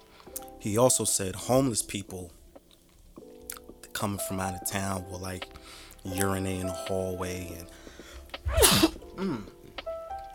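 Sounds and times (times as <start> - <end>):
speech: 0.6 - 2.4, 4.0 - 7.8, 8.5 - 9.6
sneeze: 8.5 - 9.4.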